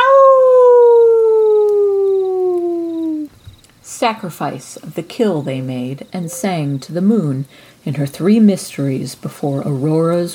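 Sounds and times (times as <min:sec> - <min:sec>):
wolf howling: 0:00.0 - 0:03.3
speech: 0:04.0 - 0:10.3.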